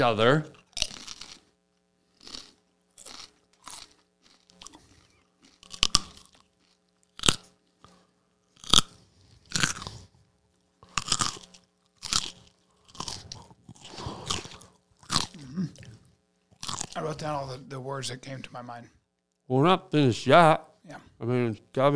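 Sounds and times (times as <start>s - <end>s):
speech: 0.0s - 0.6s, 17.2s - 21.9s
raw carrot crunched and chewed into a microphone: 0.6s - 1.5s, 2.2s - 7.8s, 8.6s - 10.1s, 10.8s - 16.0s.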